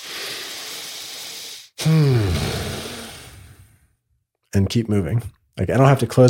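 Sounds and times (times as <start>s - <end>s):
person taking a deep breath: 0.0s - 3.8s
voiced sighing exhale: 0.0s - 3.8s
speech: 4.6s - 6.2s.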